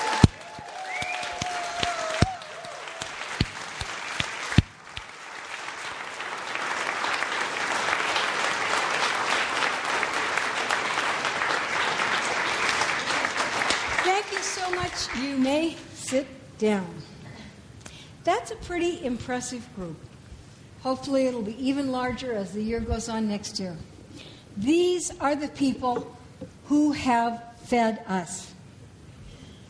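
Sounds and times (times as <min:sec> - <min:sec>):
people whooping: 0:00.0 - 0:03.5
large indoor crowd applause: 0:00.0 - 0:15.2
speech: 0:16.1 - 0:17.0, 0:18.7 - 0:20.1, 0:20.8 - 0:23.9, 0:24.6 - 0:28.5.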